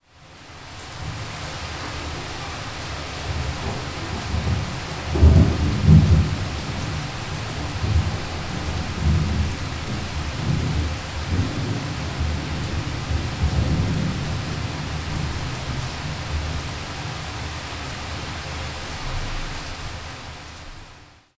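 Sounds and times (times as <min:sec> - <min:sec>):
heavy rain: 0:00.0 - 0:21.3
mountain thunder rolling: 0:01.0 - 0:16.7.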